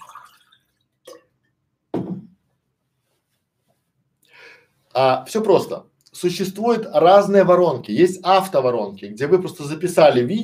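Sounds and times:
person sipping water: 0.0 - 1.5
person gulping water: 1.0 - 1.4
soft exhaled breath: 4.2 - 4.8
speech: 5.0 - 10.4.

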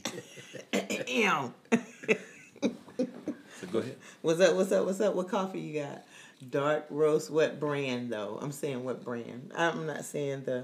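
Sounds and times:
person clearing throat with a gravelly growl: 0.0 - 1.2
speech: 1.1 - 2.3, 3.7 - 10.6.

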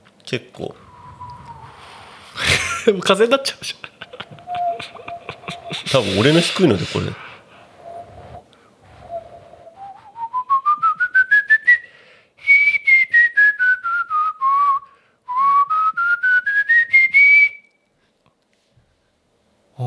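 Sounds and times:
speech: 0.3 - 0.8, 2.8 - 3.9, 5.9 - 7.2
low-pitched human whistling: 0.6 - 17.7
laughter: 2.2 - 7.5.

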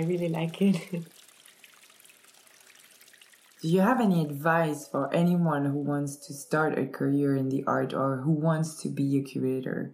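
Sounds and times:
speech: 0.0 - 1.2, 3.6 - 9.9
water dripping and trickling over an edge: 0.0 - 6.1.

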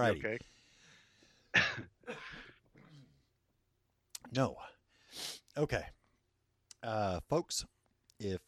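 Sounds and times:
speech: 0.0 - 0.6, 4.3 - 6.0, 6.8 - 8.4
harsh cough: 1.5 - 3.1.

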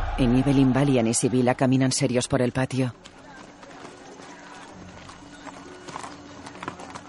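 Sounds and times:
speech: 0.2 - 3.1
busy noisy background: 2.9 - 7.0
horse hooves clip-clopping as a woman rides: 2.9 - 7.0.

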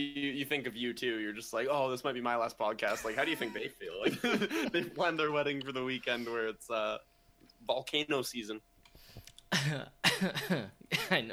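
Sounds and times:
speech: 0.0 - 8.7, 9.5 - 11.3
laughter: 2.8 - 5.2
cough: 9.5 - 11.3.

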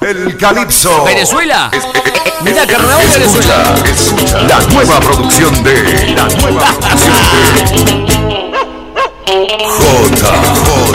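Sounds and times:
speech: 0.0 - 8.0, 9.4 - 10.9
laughter: 6.1 - 7.8
dog barking: 8.4 - 9.3.

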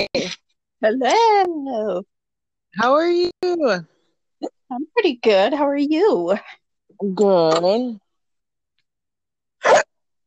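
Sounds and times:
speech: 0.0 - 2.1, 2.7 - 8.0, 9.6 - 10.2
single sharp hiccup: 9.6 - 10.0.

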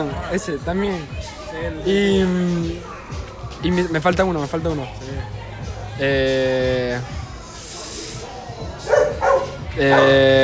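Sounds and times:
speech: 0.0 - 5.4, 6.0 - 7.2, 9.8 - 10.4
dog barking: 8.8 - 10.4.

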